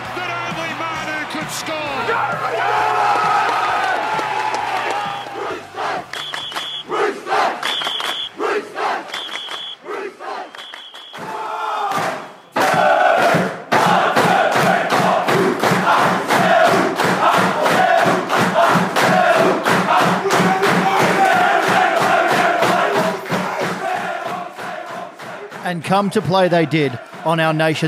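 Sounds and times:
huge stadium crowd roaring and cheering: 0.0s - 27.8s
speech: 1.5s - 3.0s, 25.9s - 27.8s
short electronic beeps: 7.7s - 8.3s, 9.2s - 9.8s.

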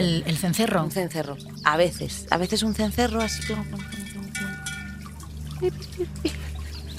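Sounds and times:
speech: 0.0s - 4.0s, 5.6s - 6.4s
brief louder water plops: 1.2s - 6.9s
steady stream of water falling from a fountain: 3.1s - 6.9s.

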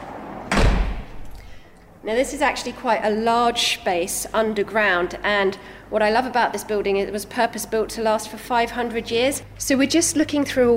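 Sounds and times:
heavy door into an underground dry room swinging shut with a solid thud: 0.1s - 1.3s
speech: 2.0s - 10.7s.

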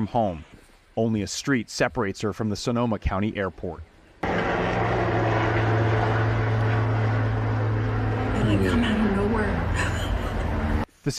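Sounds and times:
speech: 0.0s - 3.9s, 8.5s - 10.0s
low helicopter rotor hum: 4.1s - 10.9s
helicopter engine whining near a hangar preparing to lift off: 4.2s - 10.9s.

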